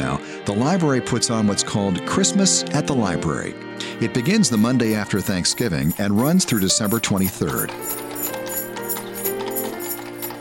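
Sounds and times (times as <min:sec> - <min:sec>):
speech: 0:00.1 - 0:08.4
horse hooves clip-clopping: 0:04.2 - 0:10.4.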